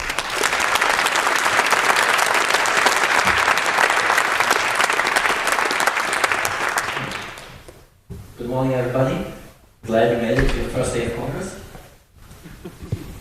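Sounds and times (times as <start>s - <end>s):
large audience clapping: 0.0s - 7.7s
speech: 8.6s - 11.5s.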